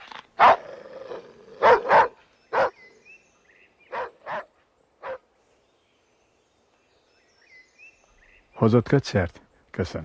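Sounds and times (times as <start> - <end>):
dog barking loudly: 0.4 - 0.6, 1.6 - 2.8, 3.9 - 5.2
speech: 8.6 - 10.0.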